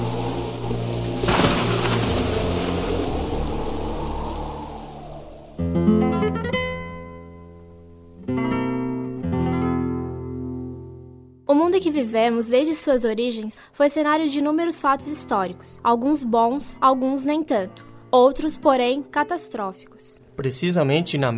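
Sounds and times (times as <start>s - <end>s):
steady rain in a storm on the Río de la Plata: 0.0s - 6.4s
thunder rumble in a storm on the Río de la Plata: 0.0s - 6.7s
music with sustained tonal chords: 0.0s - 11.1s
speech: 11.8s - 21.3s.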